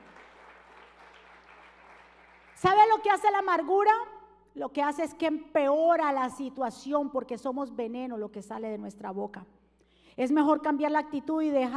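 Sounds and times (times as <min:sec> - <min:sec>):
crowd applauding: 0:00.0 - 0:02.6
speech: 0:02.6 - 0:09.6, 0:10.2 - 0:11.7.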